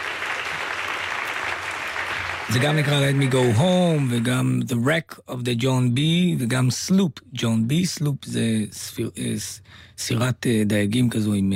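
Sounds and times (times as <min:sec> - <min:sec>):
audience applause: 0:00.0 - 0:04.3
speech: 0:02.5 - 0:11.5.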